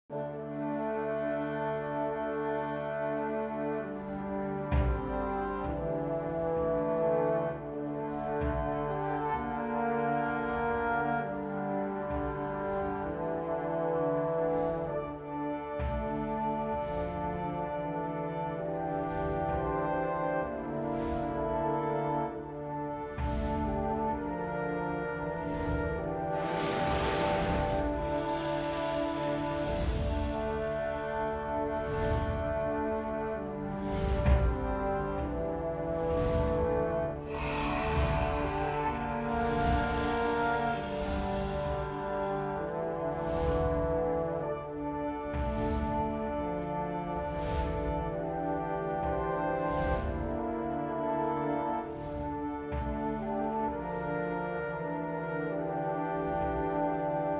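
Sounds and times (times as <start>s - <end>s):
dragon background music: 0.0s - 57.3s.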